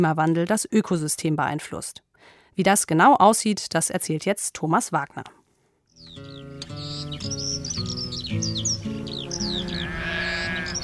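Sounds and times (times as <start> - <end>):
speech: 0.0 - 5.4
birds chirping and tweeting overhead: 5.9 - 10.8
goats grazing at the foot of Mount Etna in southern Italy bleating: 9.3 - 10.8.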